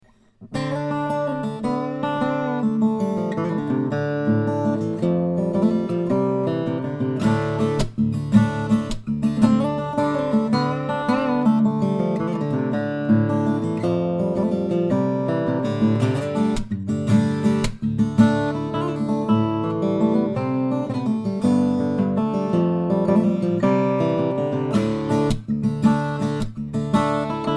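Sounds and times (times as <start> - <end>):
steel string flattop guitar with Brazilian and German spruce woods: 0.0 - 27.5.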